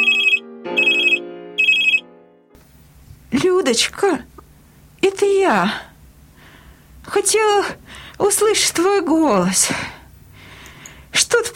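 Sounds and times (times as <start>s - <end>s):
telephone ringing: 0.0s - 2.0s
speech: 3.3s - 4.3s, 5.1s - 5.9s, 7.1s - 10.0s.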